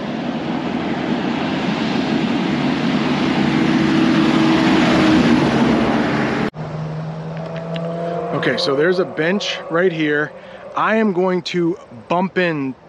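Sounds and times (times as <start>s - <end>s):
fire truck driving past: 0.0s - 12.2s
speech: 8.4s - 12.8s.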